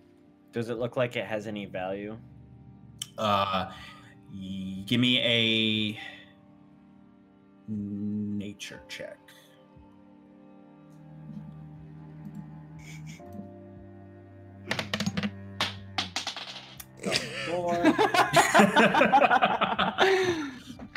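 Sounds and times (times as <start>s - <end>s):
speech: 0.5s - 2.3s, 3.2s - 6.2s, 7.7s - 9.4s, 17.0s - 20.6s
dice dropped and picked up on a table during a tabletop game: 14.7s - 16.9s
laughter: 17.0s - 20.9s.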